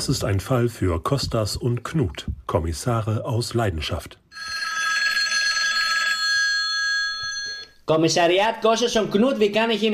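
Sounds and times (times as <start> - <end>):
speech: 0.0 - 4.6, 7.9 - 9.9
telephone ringing with a loud, high, trilling bell: 4.3 - 7.8.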